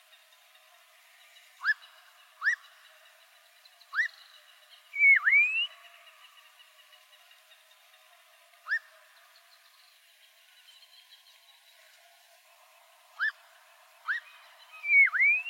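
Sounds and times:
black-crowned monjita song of rising and sweeping whistles: 4.9 - 5.7, 14.0 - 15.4.

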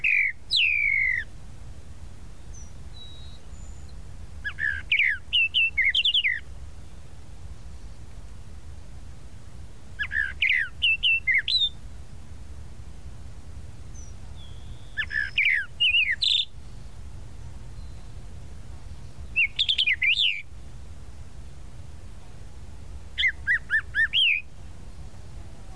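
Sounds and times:
tropical mockingbird song: 0.0 - 1.3, 2.3 - 7.0, 10.0 - 11.8, 13.9 - 20.5, 23.1 - 25.7
faint low hum: 0.0 - 25.7.

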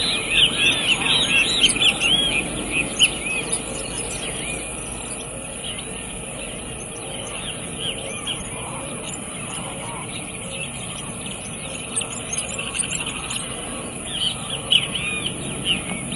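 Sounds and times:
cattle tyrant song of high squeaky twittering notes: 0.0 - 16.1
steady background noise: 0.0 - 16.1.

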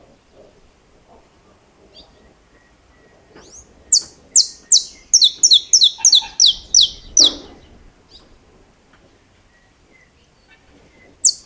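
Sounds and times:
saffron finch singing sharp high notes and stuttering chips: 3.4 - 8.2, 10.9 - 11.4.

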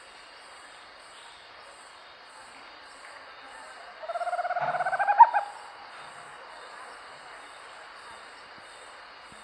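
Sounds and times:
owl giving a rapid run of soft hollow hoots: 4.0 - 5.5.

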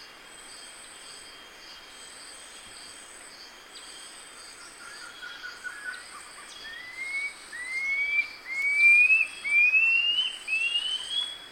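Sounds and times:
red-throated piping guan song of thin rising whistles: 6.8 - 11.4.

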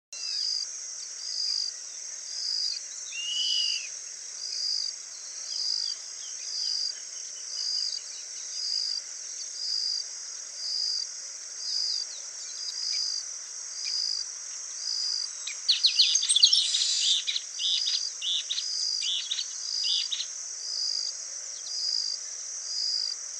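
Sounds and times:
yellow-crested elaenia calling: 15.5 - 20.3.

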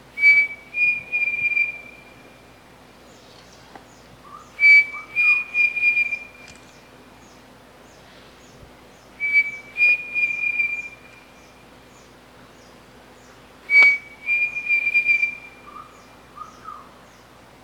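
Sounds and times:
pavonine cuckoo singing clear high whistles: 0.2 - 2.1, 4.3 - 6.6, 9.2 - 11.3, 13.7 - 16.8.

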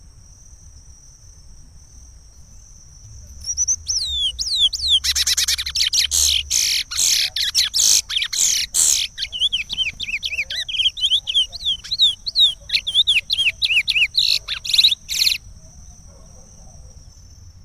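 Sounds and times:
chestnut-bellied seed finch singing: 3.3 - 15.5.

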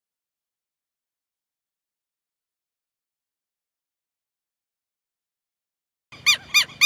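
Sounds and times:
Southern lapwing giving sharp harsh notes: 6.2 - 6.8.

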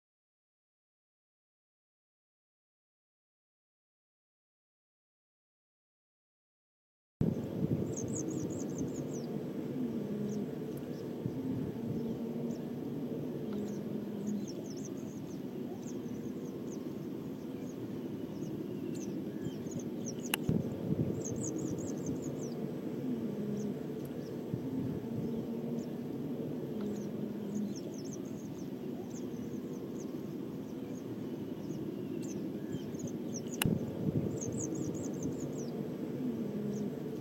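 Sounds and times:
red-throated pipit singing: 7.2 - 37.2.

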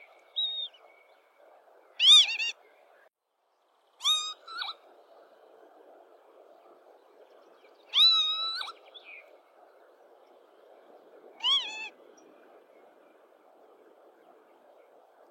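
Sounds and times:
lapwing calling: 2.0 - 2.6, 4.0 - 4.9, 7.9 - 9.2, 11.3 - 12.0.

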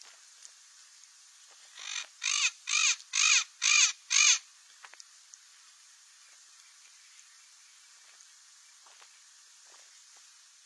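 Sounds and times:
Cape parrot squawking: 1.8 - 4.4.

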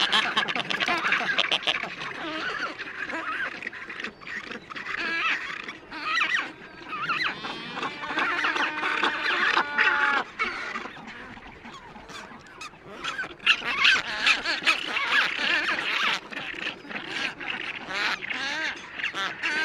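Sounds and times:
black-browed albatross chorus squawking: 0.0 - 19.6.

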